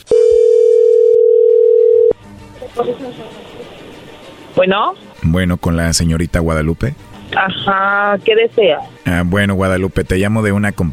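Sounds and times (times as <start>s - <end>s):
telephone dial tone: 0.1s - 2.2s
speech: 2.8s - 3.8s, 4.6s - 10.9s.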